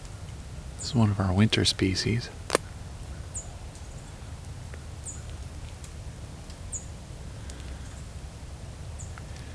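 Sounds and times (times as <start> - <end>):
speech: 0.8 - 2.4
American tree sparrow giving high call notes: 0.8 - 2.7.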